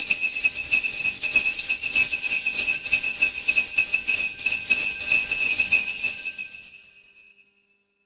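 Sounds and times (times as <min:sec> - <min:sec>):
sleigh bells: 0:00.0 - 0:08.0.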